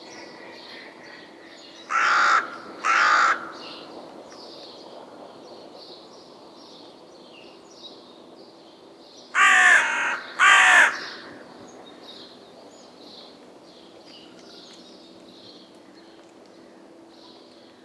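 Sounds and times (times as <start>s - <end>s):
carrion crow Corvus corone calling in harsh caws: 1.9s - 3.7s, 9.4s - 11.5s.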